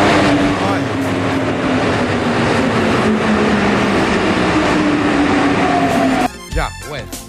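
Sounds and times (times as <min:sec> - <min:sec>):
metro train rushing past fast: 0:00.0 - 0:06.5.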